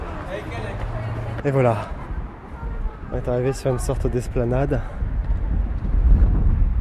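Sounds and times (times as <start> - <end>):
speech: 1.4 - 2.0, 3.1 - 5.0
wind blowing hard into the microphone on an esplanade overlooking Yerevan: 1.8 - 6.7.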